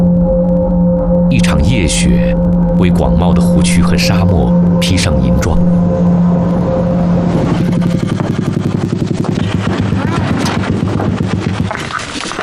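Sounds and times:
three-wheeled motorcycle engine droning while riding over ice: 0.0s - 12.3s
speech: 1.3s - 6.6s.

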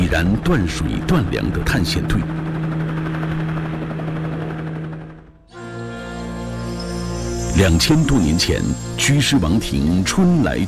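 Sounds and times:
helicopter rotor thump and engine drone: 0.0s - 10.6s
speech: 0.1s - 2.4s, 7.6s - 10.6s.

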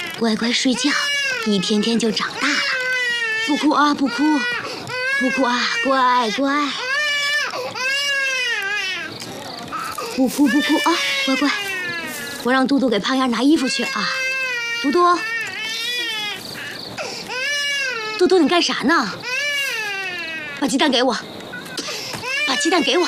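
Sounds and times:
infant crying in wavering wails: 0.0s - 12.6s, 13.4s - 20.7s, 21.5s - 23.0s
woman talking: 0.1s - 2.8s, 3.4s - 4.6s, 5.2s - 6.8s, 10.0s - 15.3s, 18.1s - 19.2s, 20.6s - 21.3s, 22.4s - 23.0s.

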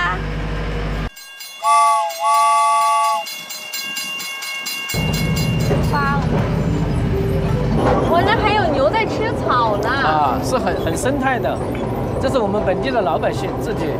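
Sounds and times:
small sightseeing train running on its rails: 1.1s - 13.9s
small sightseeing train whistle blasts: 1.6s - 3.3s
speech: 10.2s - 13.9s.

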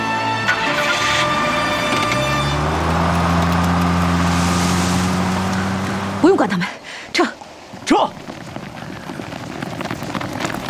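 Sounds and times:
broadband road noise: 0.0s - 10.6s
car engine revving up and pulling away: 0.1s - 6.5s.

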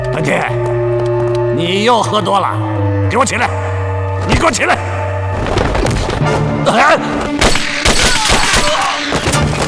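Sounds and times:
speech: 0.2s - 0.8s, 1.6s - 5.5s, 6.2s - 7.4s
gunshots: 7.4s - 9.5s.

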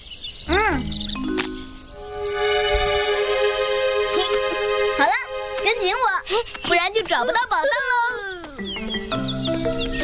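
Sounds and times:
small birds chirping: 0.0s - 3.2s, 4.1s - 10.0s
steady ringing musical tones: 0.8s - 6.0s
speech: 6.3s - 8.1s.

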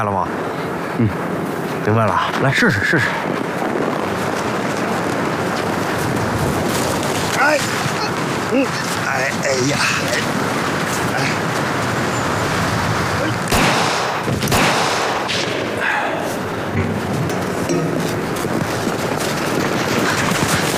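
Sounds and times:
speech: 0.0s - 3.3s, 8.5s - 10.6s, 11.2s - 11.5s
dense continuous rumbling din: 0.0s - 20.7s
sharp gunshots: 13.2s - 16.1s.

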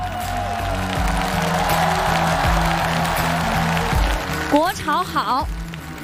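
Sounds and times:
faint cheering: 0.0s - 4.6s
large audience applauding: 0.0s - 6.0s
speech: 4.5s - 5.6s.

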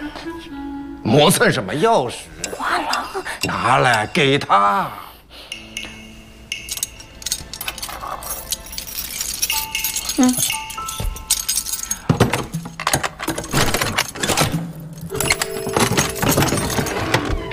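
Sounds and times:
people talking: 1.1s - 5.0s, 10.2s - 10.4s
keys to open a chest jangling: 6.5s - 17.4s.

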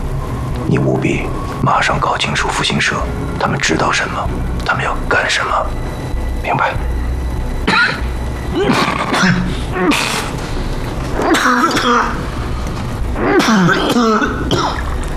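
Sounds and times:
low steady hum: 0.0s - 15.1s
speech: 0.7s - 6.9s, 8.5s - 10.4s, 11.3s - 12.2s, 13.2s - 14.8s
person coughing in harsh raspy bursts: 7.7s - 9.5s, 11.3s - 12.2s, 13.2s - 14.8s.

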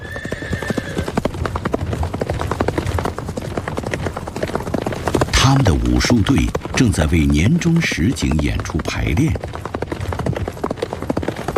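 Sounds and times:
horse whinny: 0.0s - 1.2s
horse hooves clip-clopping in an ancient town in northern Shaanxi: 0.0s - 11.5s
speech: 5.5s - 9.7s.

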